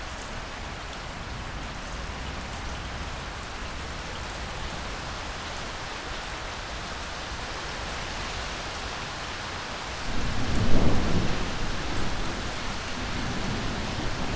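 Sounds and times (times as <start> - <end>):
steady rain: 0.0 - 14.3
low roll of thunder: 10.0 - 14.3.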